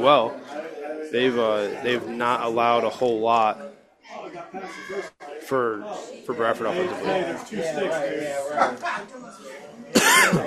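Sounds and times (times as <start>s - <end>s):
speech: 0.0s - 10.4s
person coughing after inhaling a bug: 10.0s - 10.4s.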